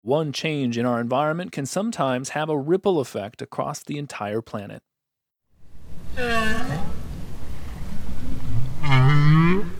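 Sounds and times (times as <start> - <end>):
speech: 0.0 - 4.9, 6.2 - 7.0, 8.8 - 9.7
North Atlantic right whale moaning rising calls: 5.9 - 9.7.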